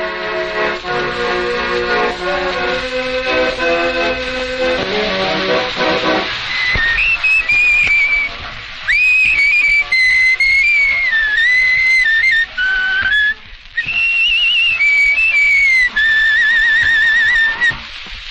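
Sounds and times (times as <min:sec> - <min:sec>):
reedy accordion-like chords: 0:00.0 - 0:06.4
person whistling a wandering melody: 0:06.5 - 0:08.3, 0:08.9 - 0:17.8.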